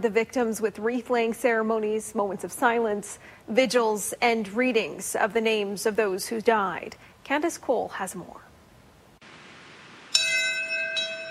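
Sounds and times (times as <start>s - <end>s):
speech: 0.0s - 8.4s
memorial bell struck at Ground Zero in New York City: 10.1s - 11.2s.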